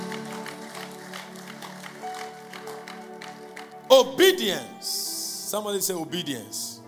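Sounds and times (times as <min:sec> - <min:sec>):
audience clapping as an offering: 0:00.0 - 0:04.6
speech: 0:03.9 - 0:06.8.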